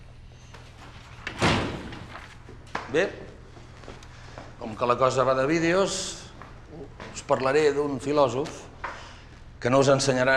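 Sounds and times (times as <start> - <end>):
classroom door shutting with a firm thud: 1.3 - 2.2
speech: 2.9 - 3.3, 4.6 - 6.2, 6.8 - 8.7, 9.6 - 10.3.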